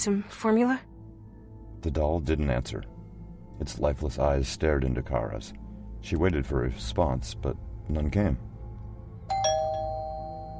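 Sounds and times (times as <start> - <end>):
speech: 0.0 - 0.9, 1.8 - 2.9, 3.6 - 8.5
low steady hum: 0.0 - 10.5
doorbell ringing with two bright chimes: 9.3 - 10.5.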